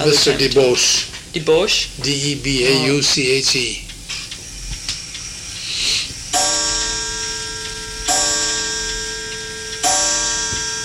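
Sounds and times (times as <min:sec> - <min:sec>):
speech: 0:00.0 - 0:03.9
clock chiming the hour: 0:06.3 - 0:10.8.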